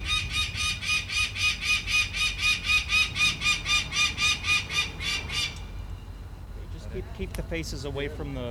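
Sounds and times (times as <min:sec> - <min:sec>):
adult female peregrine falcon screaming an alarm at her nest beneath a bridge roadway: 0:00.0 - 0:05.6
speech: 0:07.2 - 0:08.4.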